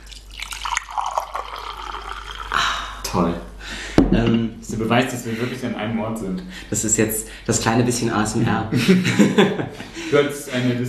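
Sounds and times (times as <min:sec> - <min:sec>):
fresh tea poured into a cup: 0:00.0 - 0:02.6
speech: 0:03.1 - 0:03.5, 0:04.1 - 0:10.8
laughter: 0:08.7 - 0:10.6.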